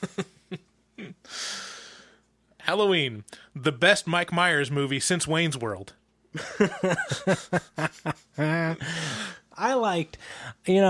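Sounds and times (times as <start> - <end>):
speech: 0.0 - 0.3, 2.7 - 10.8
laughter: 0.0 - 0.6, 6.4 - 9.0
person imitating heavy menacing breathing: 1.2 - 2.2, 8.7 - 9.5, 10.2 - 10.6.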